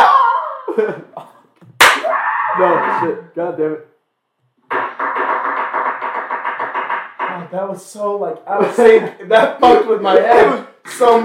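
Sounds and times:
single hand clap: 1.8 - 2.1, 4.7 - 7.4
speech: 2.6 - 3.9, 7.5 - 11.2.

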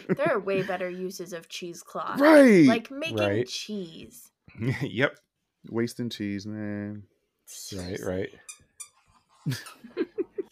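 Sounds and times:
speech: 0.1 - 8.6, 9.4 - 10.1
small pet squeaking while playing: 7.7 - 9.2.

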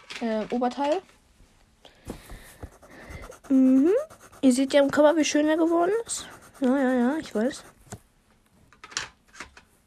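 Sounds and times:
speech: 0.2 - 1.2, 3.5 - 7.7
coloured pen tips scratching and tapping across paper: 2.2 - 8.0.

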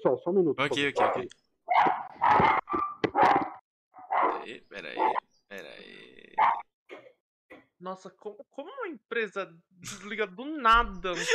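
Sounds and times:
speech: 0.0 - 2.5, 7.9 - 11.3
several dogs barking: 0.7 - 3.4, 4.0 - 5.2, 6.4 - 6.7
dogs yipping: 0.7 - 4.4
laughter: 11.0 - 11.3.

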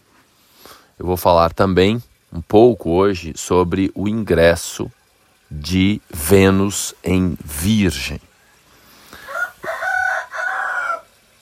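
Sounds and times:
speech: 1.0 - 8.3
rooster crowing: 8.3 - 11.3.

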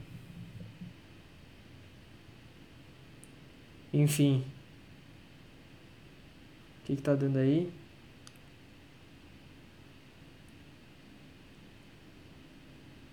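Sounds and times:
constant faint static from the microphone: 0.0 - 9.0
speech: 4.0 - 4.6, 6.9 - 7.8.

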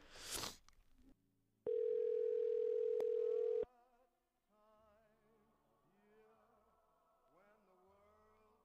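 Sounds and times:
ringback tone from an outgoing phone call: 1.7 - 3.6.

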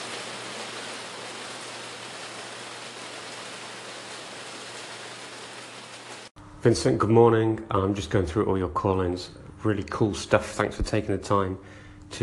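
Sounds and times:
steady rain pouring down: 0.0 - 6.3
speech: 6.6 - 12.2.

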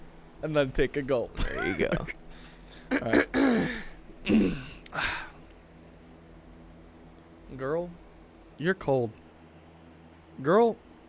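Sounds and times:
speech: 0.4 - 2.2, 2.9 - 5.2, 7.5 - 8.0, 8.6 - 9.2, 10.4 - 10.8
person clearing throat at a microphone: 2.9 - 4.8.

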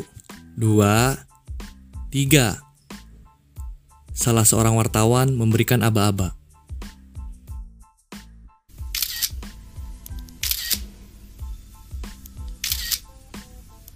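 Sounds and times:
speech: 0.0 - 1.3, 2.1 - 2.6, 4.2 - 6.4
camera shutter clicks of journalists photographing at a press event: 8.9 - 9.4, 10.0 - 10.9, 12.2 - 13.1.

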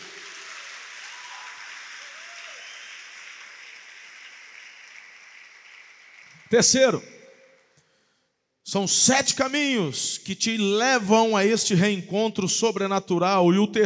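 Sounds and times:
crowd applauding: 0.0 - 7.3
speech: 6.5 - 7.1, 8.7 - 13.8.

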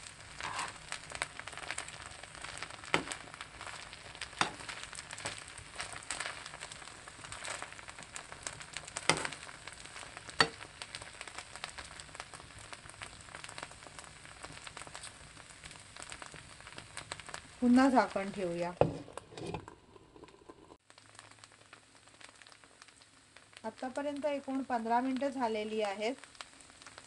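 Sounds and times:
okra frying in a pan over a low flame: 0.0 - 27.0
spoon clicking on a pan while stirring: 4.4 - 4.7
speech: 17.6 - 18.9, 23.8 - 26.3.

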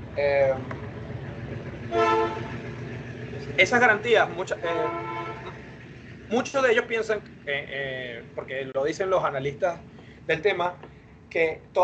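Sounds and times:
speech: 0.2 - 0.8, 1.5 - 2.6, 3.4 - 5.1, 6.3 - 11.8
passing train horn blast: 1.9 - 2.8, 4.6 - 5.8.

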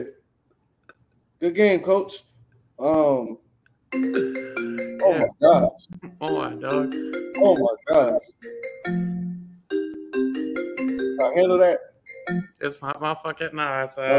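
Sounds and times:
speech: 1.4 - 9.1, 11.2 - 14.1
mobile phone ringing with a stepped electronic melody: 3.9 - 12.6.

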